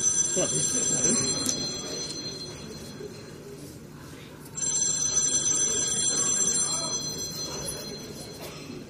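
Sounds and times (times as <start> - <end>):
telephone ringing with a bright trilling electronic tone: 0.0 - 3.3, 4.6 - 8.5
murmur of voices: 0.0 - 8.8.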